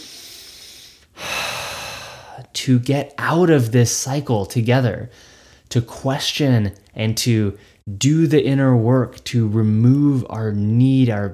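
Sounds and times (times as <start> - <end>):
deep collective breath: 0.0 - 2.4, 5.1 - 5.7
speech: 2.4 - 11.3.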